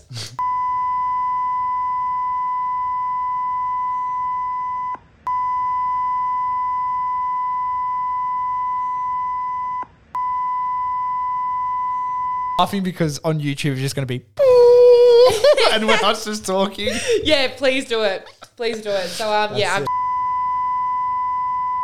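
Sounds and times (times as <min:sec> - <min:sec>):
loud high-pitched censor bleep tone: 0:00.4 - 0:12.6, 0:19.9 - 0:21.8
speech: 0:12.6 - 0:14.4, 0:15.7 - 0:19.9
laughter: 0:15.0 - 0:19.9.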